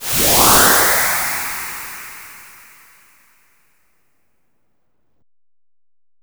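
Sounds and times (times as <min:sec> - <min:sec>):
map move fly whoosh sound effect: 0:00.0 - 0:03.0.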